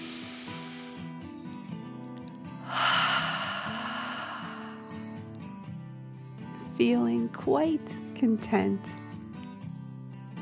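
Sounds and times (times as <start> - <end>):
deep breath in and out during a guided meditation: 0.0 - 1.2, 2.6 - 5.3
speech: 6.8 - 9.0.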